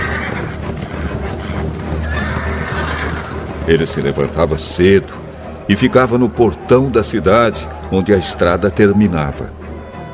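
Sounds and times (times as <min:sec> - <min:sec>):
horses neighing: 0:00.0 - 0:05.4
horse hooves clip-clopping: 0:00.0 - 0:05.5
speech: 0:03.7 - 0:09.6.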